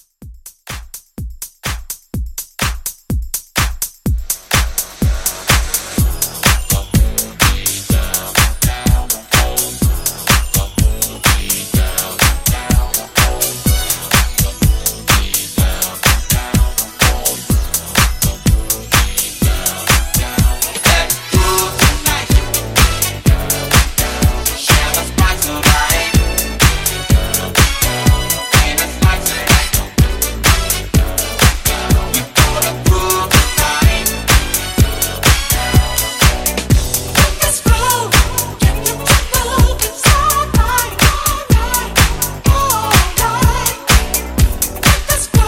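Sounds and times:
house drum loop at 125 BPM: 0:00.0 - 0:45.4.

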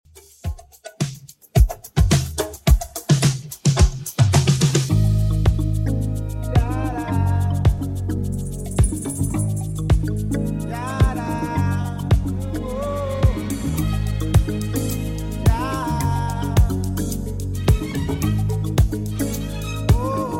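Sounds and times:
1980s drum machine beat: 0:00.1 - 0:05.8, 0:06.5 - 0:12.5, 0:13.2 - 0:20.3.

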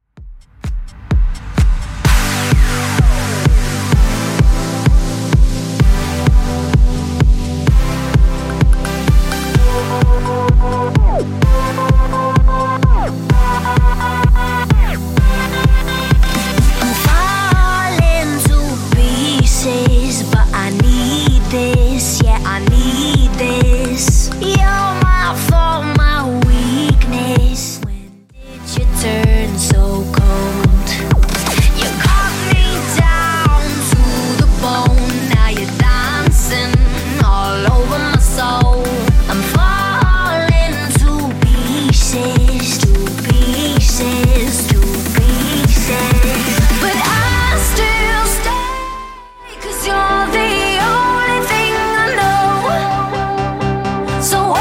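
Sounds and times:
music loop at 128 bpm: 0:00.4 - 0:54.6.

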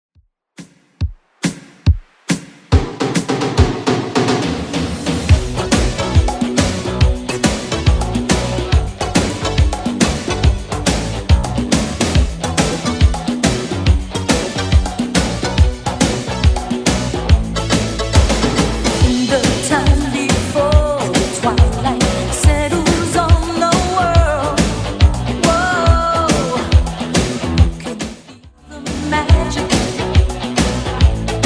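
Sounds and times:
80s Redrum drum machine beat at 140 bpm: 0:00.2 - 0:28.3, 0:29.0 - 0:31.4.

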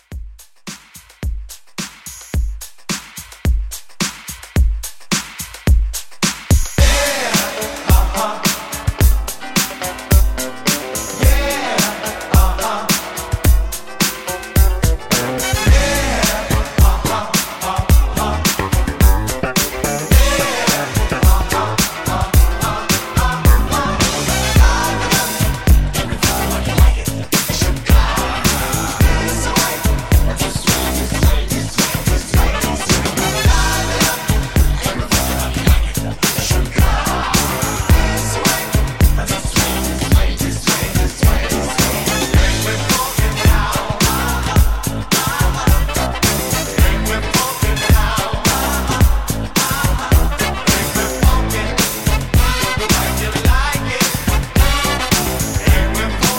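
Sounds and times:
70s funk drum beat: 0:00.0 - 0:56.3.

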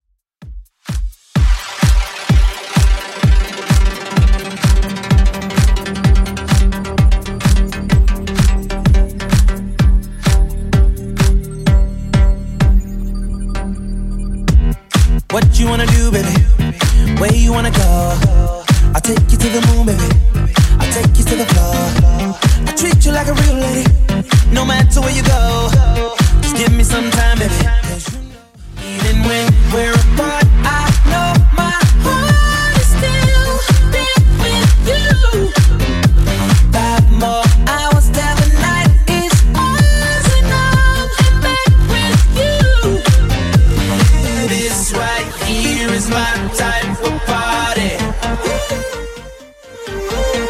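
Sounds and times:
128 bpm music track: 0:00.9 - 0:50.4.

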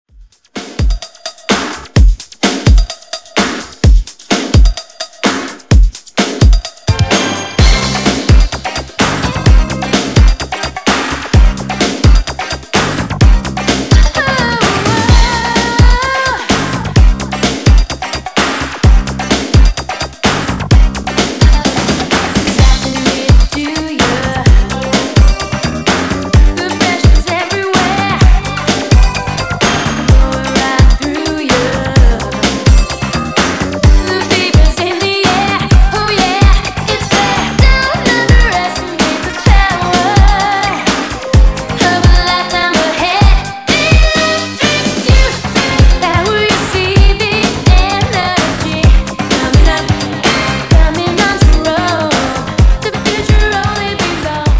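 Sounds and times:
electronic music loop at 128 BPM: 0:00.2 - 0:54.5.

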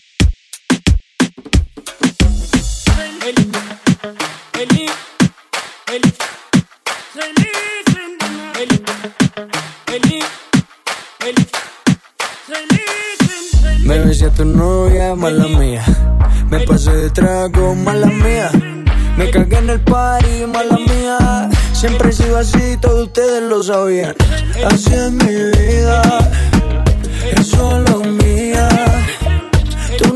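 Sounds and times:
Latin urban music: 0:00.2 - 0:30.1.

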